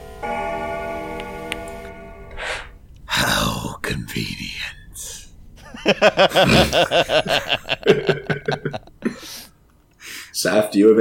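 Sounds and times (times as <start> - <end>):
huge grandfather clock striking one: 0.0 - 2.8
soft breath: 2.3 - 2.8, 9.0 - 10.4
speech: 3.9 - 5.2, 5.9 - 8.2, 10.4 - 10.9
laughter: 5.6 - 9.5.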